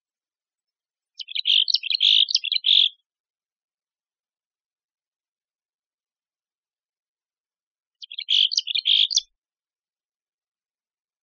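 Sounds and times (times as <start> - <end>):
Mexican chickadee calling: 1.2 - 3.0, 8.0 - 9.3.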